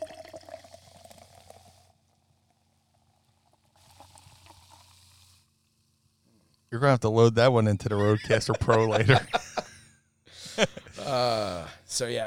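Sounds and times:
seltzer fizzing as it is poured into a glass: 0.0s - 5.4s
speech: 6.7s - 9.4s, 11.1s - 12.2s
laughter: 7.9s - 11.7s.

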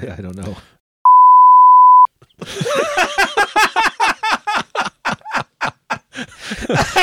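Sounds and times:
speech: 0.0s - 0.8s, 2.4s - 3.0s, 6.7s - 7.0s
censor bleep tone covering the punchline of a dirty joke: 1.0s - 2.1s
laughter: 2.3s - 7.0s.

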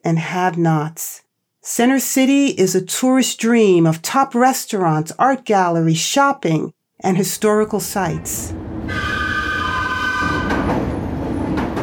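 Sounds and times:
speech: 0.0s - 9.2s
elevated train rumbling past overhead: 7.7s - 11.8s.

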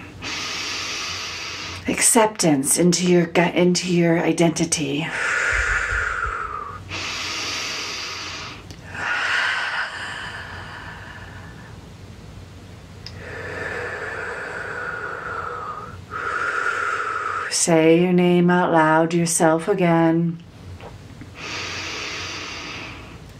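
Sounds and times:
slow deep breathing during a guided meditation: 0.0s - 1.9s, 5.1s - 11.9s, 13.1s - 17.6s, 21.3s - 23.3s
speech: 1.9s - 5.4s, 17.6s - 20.5s.

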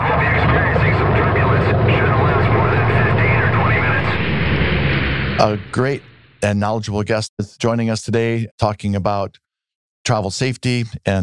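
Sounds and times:
airplane engine roar: 0.0s - 6.4s
voices: 0.0s - 6.6s
speech: 5.4s - 9.4s, 10.1s - 11.2s.

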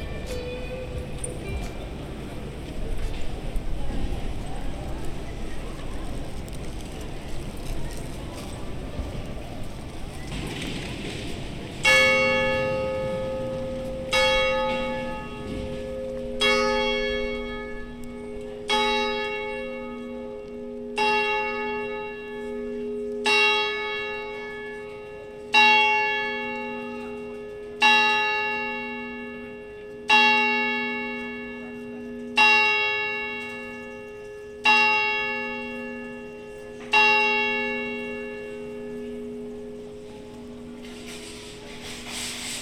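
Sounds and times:
steady wash of city noise: 0.0s - 42.5s
Broadgate clock bell striking the hour: 11.8s - 42.5s.

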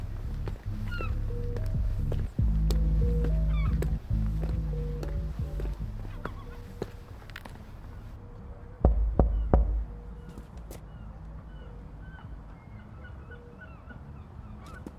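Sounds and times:
soft tonal music: 0.0s - 14.9s
knocking on a door: 8.8s - 9.9s.

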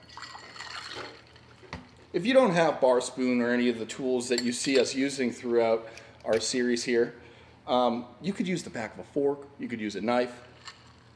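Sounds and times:
soda water pouring into a glass: 0.0s - 1.5s
speech: 2.1s - 10.5s.

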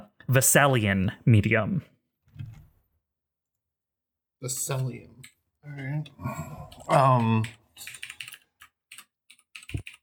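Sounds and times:
speech: 0.3s - 1.9s, 4.4s - 8.0s
typing on a computer keyboard: 6.7s - 10.0s.

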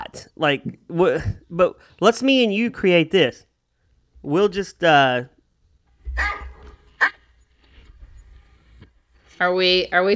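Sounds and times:
speech: 0.1s - 3.5s, 4.2s - 5.3s, 6.2s - 6.4s, 9.4s - 10.1s
person imitating a dog barking: 6.2s - 7.2s.

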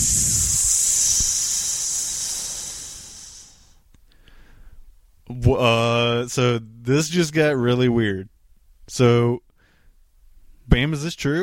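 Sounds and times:
person imitating a snake hiss: 0.0s - 3.8s
speech: 5.4s - 8.3s, 8.9s - 9.4s, 10.7s - 11.4s.

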